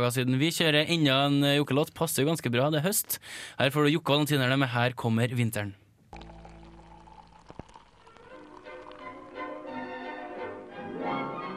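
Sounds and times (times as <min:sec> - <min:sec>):
speech: 0:00.0 - 0:06.3
beer pouring into a glass: 0:06.1 - 0:10.2.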